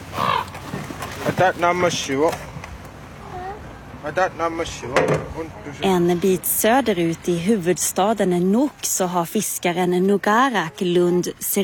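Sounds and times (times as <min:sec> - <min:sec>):
ravens calling from rooftops with harsh throaty croaks: 0:00.0 - 0:00.9
steady outdoor hum: 0:00.0 - 0:11.6
speech: 0:01.3 - 0:02.5, 0:04.0 - 0:11.6.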